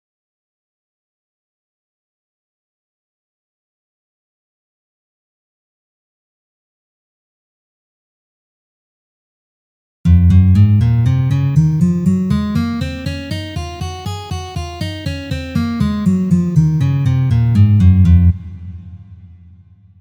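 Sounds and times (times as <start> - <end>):
C sharp major scale in first position: 10.1 - 19.4.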